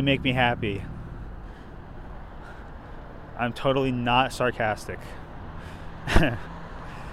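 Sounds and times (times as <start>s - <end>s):
speech: 0.0s - 0.9s, 3.4s - 5.2s, 6.0s - 6.5s
car traffic going past: 0.0s - 7.1s.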